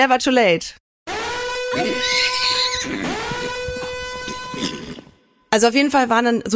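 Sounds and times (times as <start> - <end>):
speech: 0.0 - 0.8, 1.7 - 3.6, 5.5 - 6.5
pony alarm musical jingle: 1.5 - 4.7
horse whinny: 1.7 - 5.1.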